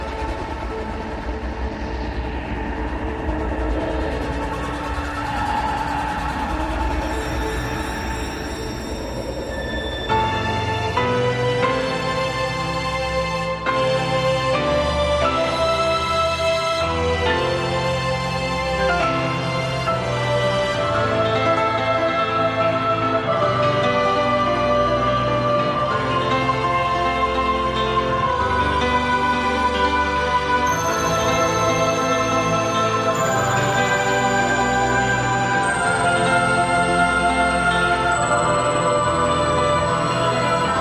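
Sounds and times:
loud dense epic metal battle theme instrumental music: 0.0s - 40.7s.

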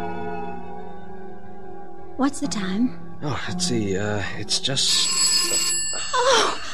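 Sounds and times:
speech: 2.3s - 5.3s
telephone bell ringing: 4.9s - 6.7s.

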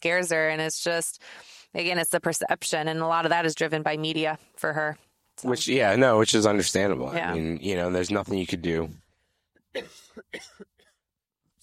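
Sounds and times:
speech: 0.0s - 9.0s, 9.7s - 10.7s
harsh raspy coughing: 9.7s - 11.0s.

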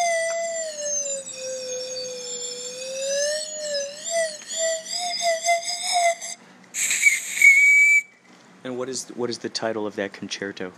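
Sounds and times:
person whistling a slow wavering tune: 0.0s - 8.2s
brief burst of hiss: 6.8s - 7.7s
speech: 8.6s - 10.7s.

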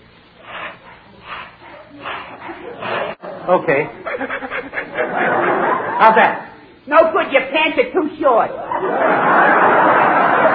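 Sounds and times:
person panting as a breath-control exercise: 0.4s - 3.2s
laughter: 2.0s - 6.6s, 8.5s - 10.5s
speech: 3.5s - 4.3s, 6.0s - 9.9s.

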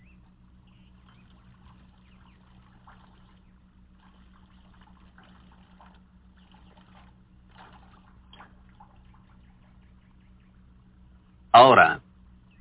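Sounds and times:
water streaming out of small holes in a container: 0.0s - 11.1s
faint water splashes: 0.7s - 11.0s
speech: 11.6s - 12.0s.

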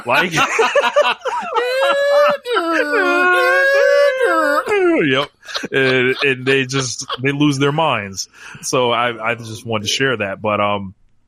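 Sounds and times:
laughter: 0.0s - 10.2s
speech: 0.0s - 11.0s
person vocally imitating a wailing alarm siren: 1.6s - 5.0s.

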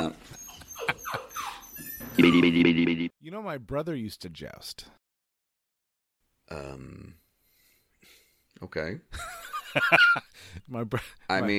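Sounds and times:
dog whines and yips: 0.3s - 2.3s
speech: 2.2s - 5.0s, 6.5s - 7.2s, 8.6s - 11.5s.

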